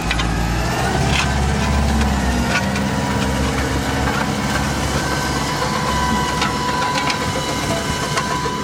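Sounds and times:
tracked robot tractor engine drone on a farm estate: 0:00.0 - 0:08.6.

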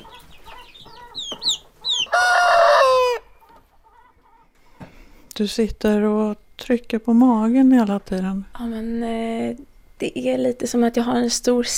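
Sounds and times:
chickens clucking: 0:00.0 - 0:05.1
speech: 0:05.4 - 0:11.7.

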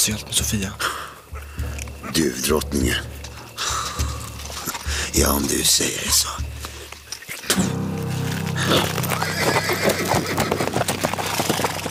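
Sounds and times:
speech: 0:00.0 - 0:01.1, 0:02.1 - 0:03.2, 0:05.2 - 0:06.7, 0:07.6 - 0:07.8
horse hooves clip-clopping while ridden: 0:01.2 - 0:11.8
horse neighing: 0:08.8 - 0:11.5.

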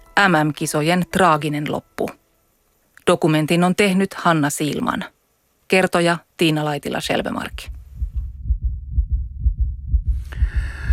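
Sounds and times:
speech: 0:00.2 - 0:02.2, 0:03.1 - 0:07.8
heartbeat of a man competing in a sauna world championship pounding: 0:07.0 - 0:10.9.

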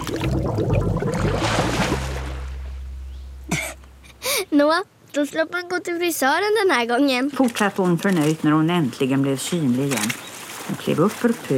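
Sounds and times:
water bubbling from head dunked underwater: 0:00.0 - 0:04.1
speech: 0:04.6 - 0:11.5.

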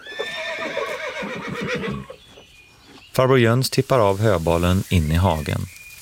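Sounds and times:
two horses in a paddock whinnying: 0:00.0 - 0:02.2
speech: 0:03.2 - 0:05.8.

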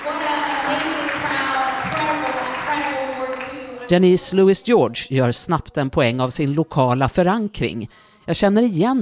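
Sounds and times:
audience applause in church pews at a citizens' meeting: 0:00.0 - 0:03.9
speech: 0:03.9 - 0:09.0.

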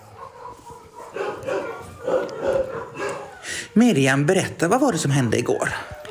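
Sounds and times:
small scared dog yipping and barking in a forest: 0:00.1 - 0:03.4
small scared dog whimpering: 0:01.6 - 0:03.7, 0:05.5 - 0:06.0
speech: 0:03.8 - 0:06.0.

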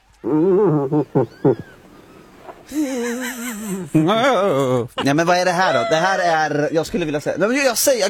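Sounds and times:
laughter: 0:00.2 - 0:01.8, 0:02.7 - 0:07.7
speech: 0:00.2 - 0:01.8, 0:02.7 - 0:08.0
irritated cow moose moaning and grunting: 0:00.2 - 0:04.7.

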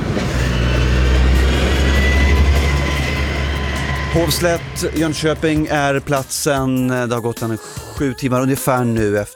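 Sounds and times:
cars driving on a road: 0:00.0 - 0:06.1
speech: 0:04.2 - 0:09.3.

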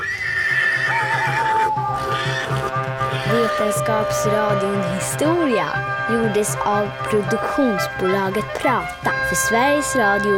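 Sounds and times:
horse whinnying with long wavering neigh: 0:00.0 - 0:05.0
galloping horse hooves: 0:00.0 - 0:05.2
speech: 0:03.4 - 0:10.3.

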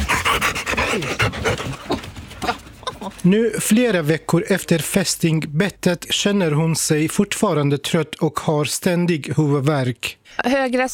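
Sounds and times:
dogs panting: 0:00.0 - 0:03.2
speech: 0:00.9 - 0:01.9, 0:03.2 - 0:10.9.

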